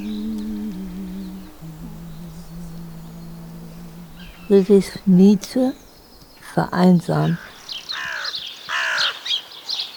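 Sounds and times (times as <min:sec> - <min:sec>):
speech: 0:04.5 - 0:05.8, 0:06.6 - 0:07.4
crows cawing: 0:07.4 - 0:09.2.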